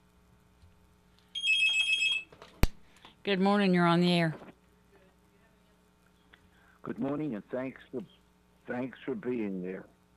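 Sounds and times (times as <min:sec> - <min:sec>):
faint low hum: 0:00.0 - 0:10.1
telephone ringing with an incoming call on a call-in line: 0:01.4 - 0:02.3
speech: 0:03.2 - 0:04.4, 0:07.0 - 0:10.0.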